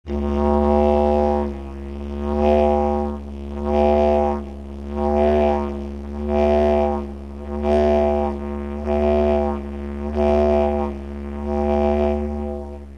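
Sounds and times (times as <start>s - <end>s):
didgeridoo with fast volume modulation: 0.0s - 12.9s.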